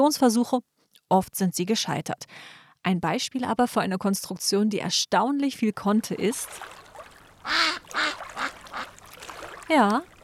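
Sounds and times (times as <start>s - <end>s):
speech: 0.0s - 6.8s, 7.4s - 8.2s, 9.7s - 10.1s
mechanical duck quacking: 7.4s - 8.9s.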